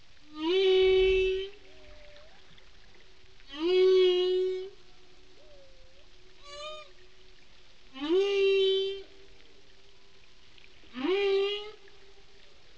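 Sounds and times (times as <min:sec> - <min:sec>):
softer short tonal whale notes: 0:00.3 - 0:02.4, 0:03.5 - 0:07.2, 0:07.9 - 0:09.3, 0:10.9 - 0:12.4
whale calls with rich harmonic moans: 0:00.3 - 0:02.6, 0:03.5 - 0:07.0, 0:08.0 - 0:09.2.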